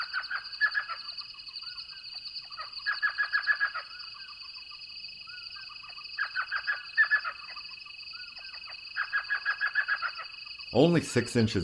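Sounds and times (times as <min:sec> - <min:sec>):
elf owl calling from saguaro cactus nest hole in Sonoran Desert: 0:00.0 - 0:01.1, 0:02.5 - 0:04.3, 0:05.6 - 0:07.6, 0:08.3 - 0:10.3
high-pitched drone of night insects in Sonoran Desert: 0:00.0 - 0:11.6
speech: 0:10.8 - 0:11.6.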